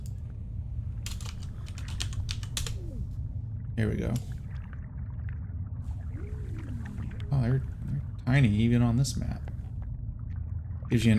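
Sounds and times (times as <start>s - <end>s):
low constant hum: 0.0s - 11.1s
rapid typing on a computer keyboard: 1.1s - 2.8s
speech: 3.8s - 4.4s, 7.3s - 7.7s, 8.3s - 9.5s, 10.9s - 11.1s.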